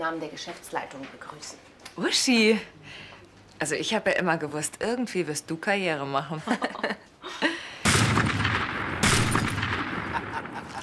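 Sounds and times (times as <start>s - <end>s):
speech: 0.0s - 7.5s
laughter: 6.4s - 7.6s, 10.0s - 10.8s
gunshots in a shootout: 7.8s - 10.8s.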